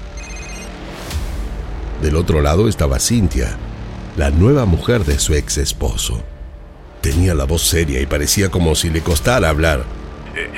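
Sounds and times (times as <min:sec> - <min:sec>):
mobile phone ringing with a short electronic tone: 0:00.0 - 0:00.8
speech: 0:02.0 - 0:06.4, 0:07.0 - 0:10.5.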